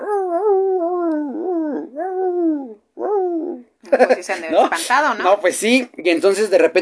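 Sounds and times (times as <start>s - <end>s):
person imitating coyote howling: 0.0s - 3.7s
speech: 4.0s - 6.7s.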